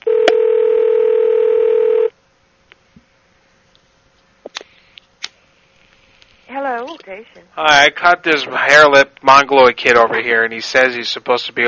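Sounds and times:
telephone dial tone while placing a call: 0.0 - 2.1
speech: 7.1 - 11.6.

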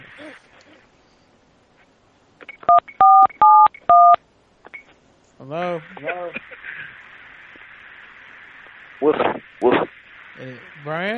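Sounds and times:
telephone keypad dialing tones: 2.7 - 4.2
speech: 5.5 - 6.5, 10.4 - 11.1.

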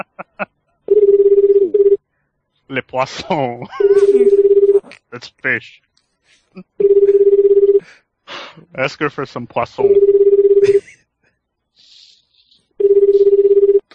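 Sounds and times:
laughter: 0.0 - 0.5, 2.9 - 5.2, 10.6 - 11.0
telephone ringing with electronic trills: 0.9 - 2.0, 3.8 - 4.8, 6.8 - 7.8, 9.8 - 10.8, 12.8 - 13.9
speech: 2.9 - 4.5, 5.1 - 6.7, 8.8 - 10.0, 10.6 - 10.9.

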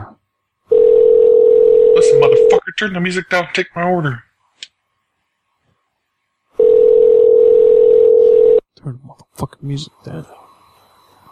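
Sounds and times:
telephone dial tone while a caller redials: 0.7 - 2.5, 6.6 - 8.6
speech: 2.2 - 4.3, 8.8 - 10.4.

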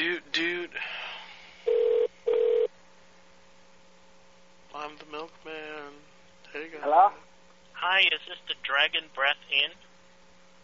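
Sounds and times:
faint hum: 0.0 - 10.6
cell phone ringing tone: 1.7 - 2.7
speech: 8.3 - 9.9.

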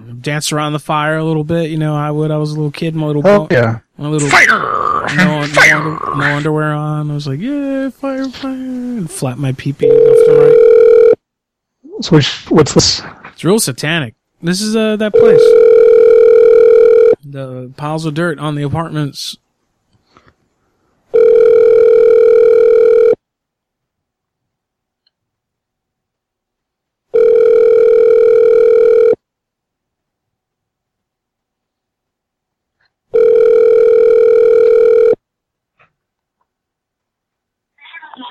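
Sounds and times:
speech: 0.2 - 10.7, 12.0 - 15.8, 17.3 - 19.4
phone line ringback tones: 9.8 - 11.2, 15.1 - 17.2, 21.1 - 23.2, 27.1 - 29.2, 33.1 - 35.2.

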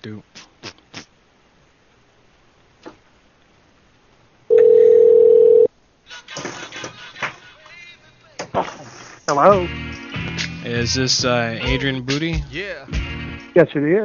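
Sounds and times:
speech: 0.0 - 0.5, 9.3 - 9.8, 10.6 - 13.0, 13.6 - 14.0
telephone dial tone as a call is placed: 4.5 - 5.7.

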